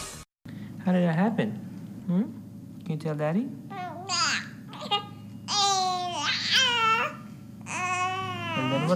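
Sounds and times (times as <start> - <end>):
speech: 0.9 - 2.4, 3.0 - 4.2
baby babbling: 3.7 - 8.9.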